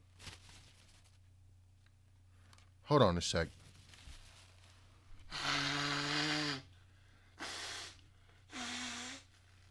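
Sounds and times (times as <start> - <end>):
speech: 2.9 - 3.6
person blowing their nose: 5.3 - 6.7, 7.4 - 9.4.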